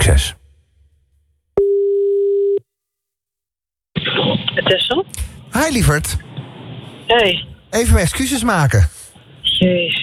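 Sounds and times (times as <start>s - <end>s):
speech: 0.0s - 0.4s, 4.0s - 6.3s, 7.1s - 9.0s, 9.6s - 10.0s
phone line ringing tone from a call to a man's wife: 1.6s - 2.6s.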